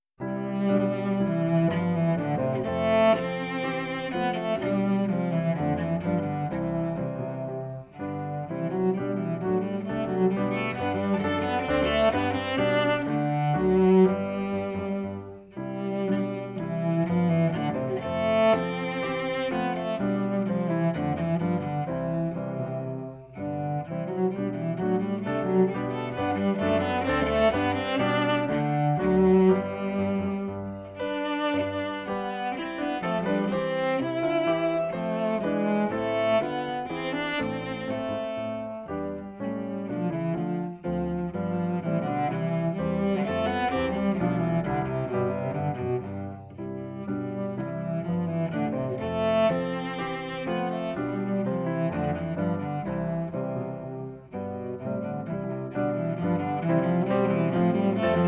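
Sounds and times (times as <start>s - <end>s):
cello playing a bourree: 0.0s - 58.2s.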